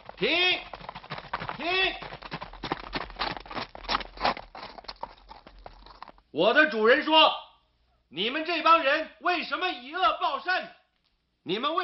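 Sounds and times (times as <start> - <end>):
horse hooves clip-clopping: 0.0 - 6.3
speech: 0.2 - 0.7, 6.4 - 7.4, 8.1 - 10.8, 11.4 - 11.8.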